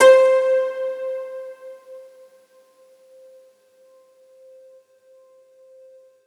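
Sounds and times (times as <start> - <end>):
harp note C2: 0.0 - 2.0.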